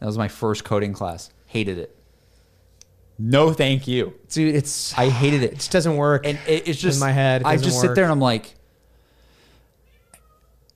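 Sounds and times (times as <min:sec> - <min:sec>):
speech: 0:00.0 - 0:02.0, 0:03.2 - 0:08.6
low steady hum: 0:01.0 - 0:09.2
cat meowing: 0:09.9 - 0:10.6.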